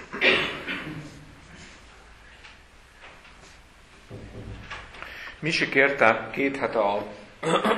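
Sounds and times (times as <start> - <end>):
faint shuffle: 0.7 - 5.8
outer door swinging shut with a scraping thud: 4.1 - 5.0
speech: 5.4 - 7.7.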